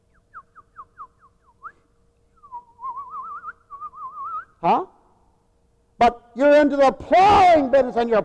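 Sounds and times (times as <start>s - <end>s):
person whistling like small birds: 0.1s - 4.6s
speech: 4.6s - 4.9s, 6.0s - 8.2s.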